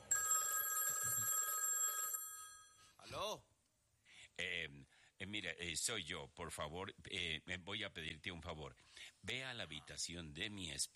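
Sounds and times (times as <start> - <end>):
telephone ringing in a house at night in North Yorkshire, England: 0.0 - 2.8
speech: 3.1 - 3.5, 4.4 - 10.9.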